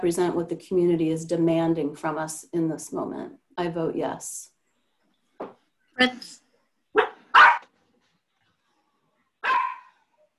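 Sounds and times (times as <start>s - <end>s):
speech: 0.0s - 4.5s, 5.4s - 6.4s
dog barking: 7.0s - 7.7s, 9.4s - 10.0s.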